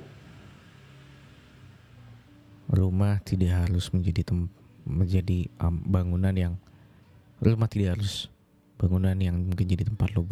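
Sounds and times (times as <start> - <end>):
motorcycle passing by outside: 0.0 - 2.6
hiss: 0.0 - 10.2
speech: 2.8 - 6.7, 7.4 - 10.2.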